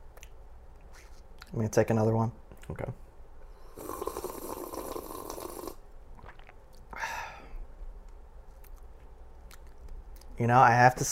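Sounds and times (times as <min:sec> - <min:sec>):
speech: 0:01.5 - 0:03.0, 0:10.4 - 0:11.1
slurp of water from a glass: 0:03.8 - 0:06.6.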